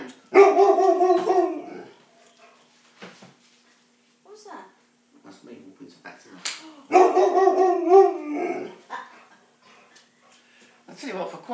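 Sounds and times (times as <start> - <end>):
small dog barking and howling: 0.3 - 1.9, 6.9 - 8.8
small dog snapping: 6.4 - 6.7.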